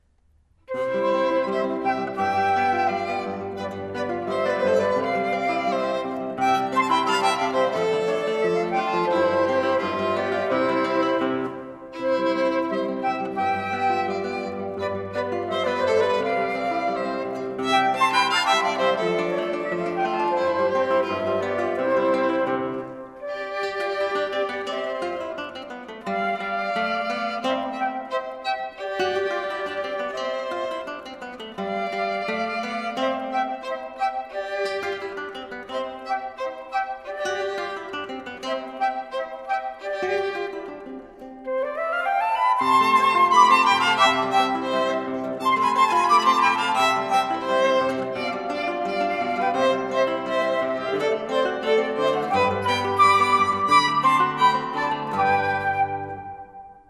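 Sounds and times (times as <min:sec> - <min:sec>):
flute playing an andantino from a trio: 0:00.7 - 0:56.8.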